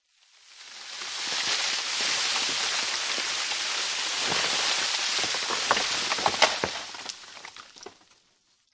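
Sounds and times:
fine debris sand sliding and falling: 0.3s - 7.0s.

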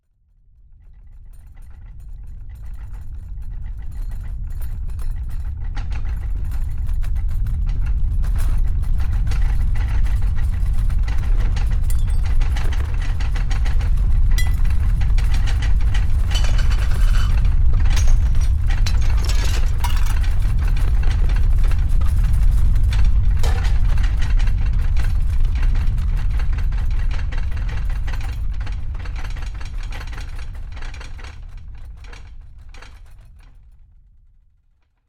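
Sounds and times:
house objects shaking and rattling in an earthquake: 4.3s - 30.4s
low earthquake rumble: 9.0s - 26.7s
house objects falling and smashing in an earthquake: 16.2s - 20.8s.

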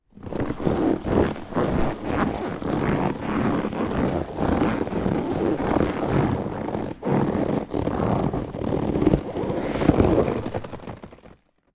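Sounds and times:
leather chair cushion squeaking and creaking with movement: 0.2s - 11.5s.

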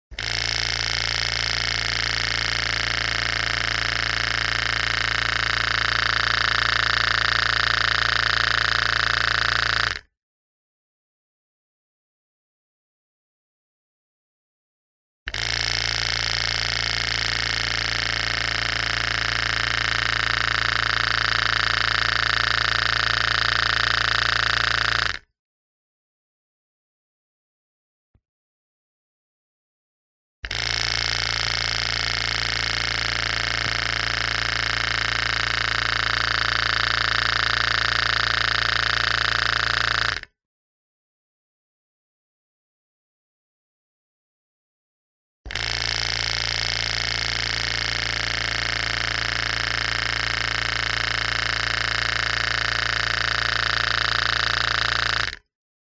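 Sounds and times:
machine compressor switching on and off in short bursts recorded with a contact mic: 0.1s - 10.1s, 15.3s - 25.2s, 30.4s - 40.3s, 45.5s - 55.4s.

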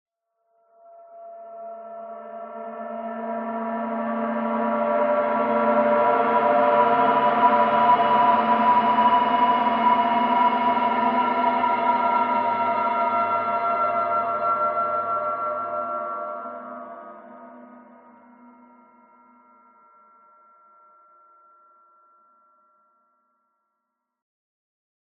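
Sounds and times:
dissonant cold metallic resonant swell transition: 0.6s - 19.5s.

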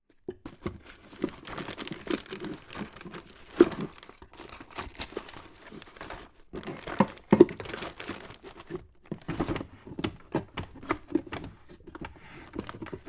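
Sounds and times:
rummaging through a household kitchen drawer: 0.1s - 13.0s.

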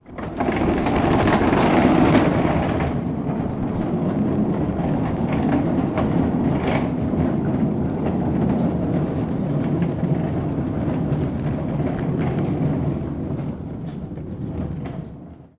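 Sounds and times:
industrial dolly cart with heavy trays being pushed: 0.0s - 15.5s.

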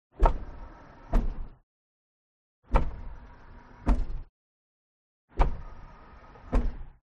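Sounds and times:
garage car lift lowering: 0.2s - 1.6s, 2.7s - 4.3s, 5.4s - 7.0s.

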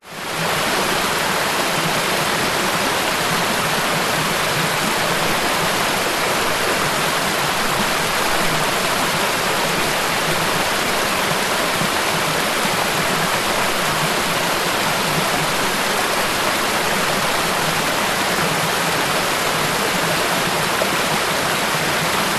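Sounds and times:
fast flowing forest creek: 0.0s - 22.3s.

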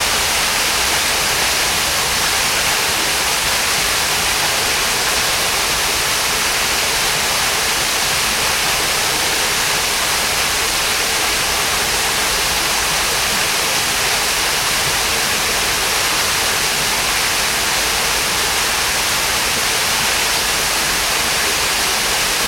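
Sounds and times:
small waterfall: 0.0s - 22.4s.

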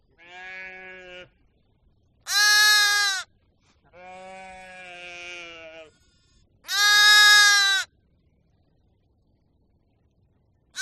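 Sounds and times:
sheep bleating: 2.3s - 3.2s, 4.0s - 5.9s, 6.7s - 7.8s.

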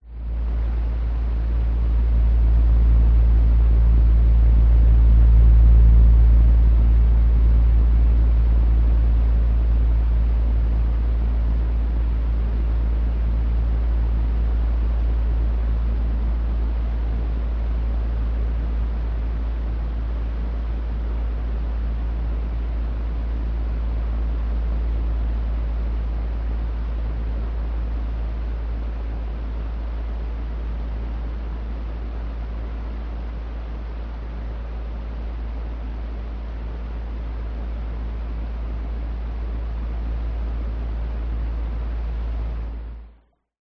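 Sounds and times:
household fan running: 0.0s - 43.3s.

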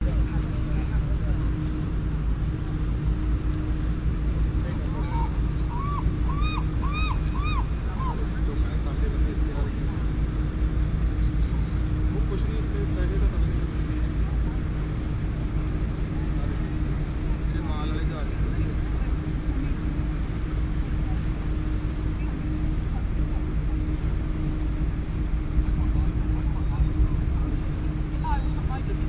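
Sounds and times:
boats and seabus at a market dock: 0.0s - 29.0s
pedestrians walla at a market dock: 0.0s - 29.0s
planes: 0.0s - 29.0s
water at a market dock: 0.0s - 29.0s
seagulls at a market dock: 4.9s - 8.4s.

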